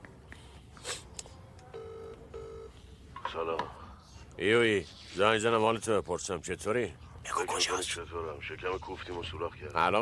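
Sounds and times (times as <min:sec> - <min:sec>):
steady electronic telephone tones: 0:01.8 - 0:02.7
telephone being dialed beeps: 0:01.8 - 0:02.7
speech: 0:03.4 - 0:03.8, 0:04.4 - 0:10.0.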